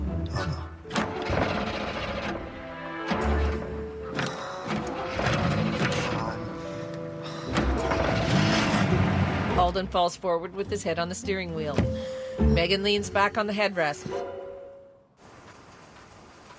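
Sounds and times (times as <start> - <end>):
car starter cranking engine without catching: 0.9 - 9.6
mechanical clunks: 0.9 - 9.6
speech: 9.8 - 14.3.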